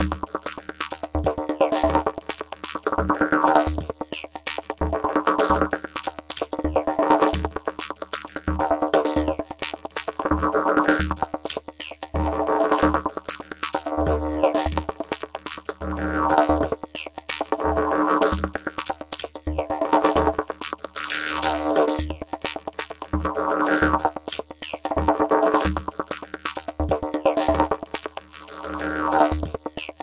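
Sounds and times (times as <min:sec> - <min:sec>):
didgeridoo techno: 0:00.0 - 0:30.0.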